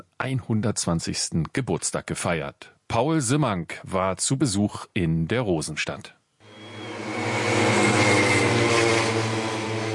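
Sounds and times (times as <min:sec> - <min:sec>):
speech: 0:00.0 - 0:06.2
pacer motorcycle engines leading cyclists in a motor-paced track race at a velodrome in Germany: 0:06.5 - 0:09.9.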